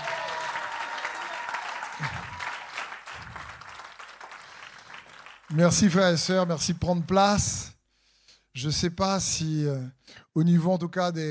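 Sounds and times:
church crowd cheering and shouting: 0:00.0 - 0:02.9
church audience clapping: 0:00.0 - 0:07.2
speech: 0:05.5 - 0:07.7, 0:08.6 - 0:11.2.

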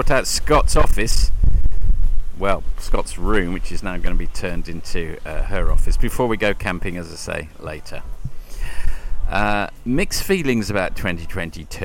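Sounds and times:
speech: 0:00.0 - 0:01.5, 0:02.4 - 0:11.8
blustery wind buffeting the microphone on a sunny day: 0:00.0 - 0:07.0, 0:08.0 - 0:10.2.

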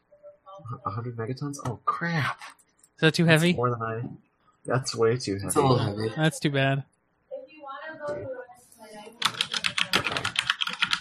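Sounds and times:
speech: 0:00.6 - 0:06.9
rapid typing on a computer keyboard: 0:09.2 - 0:11.0.

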